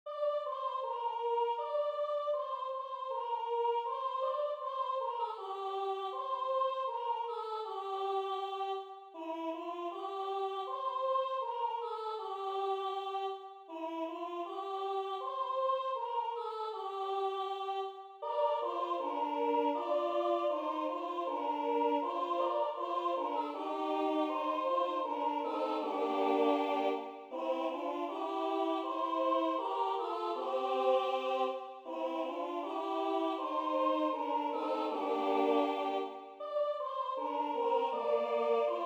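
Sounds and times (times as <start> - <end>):
carol singing from Basarabia: 0.1 - 38.8.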